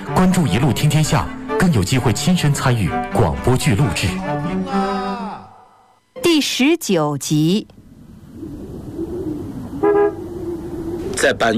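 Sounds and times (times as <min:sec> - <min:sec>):
speech: 0:00.1 - 0:05.0, 0:06.4 - 0:07.8, 0:11.2 - 0:11.5
sedan engine humming while arriving: 0:07.6 - 0:11.5
sedan car horn honk: 0:09.8 - 0:10.2.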